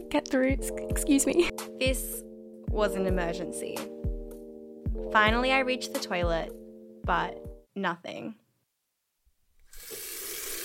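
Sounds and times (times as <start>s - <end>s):
speech: 0.0s - 3.9s, 5.0s - 8.4s
water running from a tap into a sink for hand washing: 9.6s - 10.6s.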